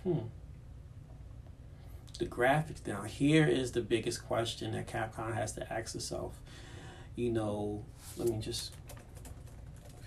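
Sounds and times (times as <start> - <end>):
speech: 0.0 - 0.4, 2.2 - 8.8
typing on a computer keyboard: 8.3 - 10.0.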